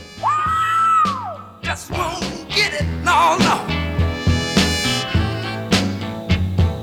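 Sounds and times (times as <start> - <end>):
soul singer's raspy scream in recorded song: 0.0 - 4.0, 4.9 - 5.7
full band with horns, drums and guitar: 0.0 - 6.8.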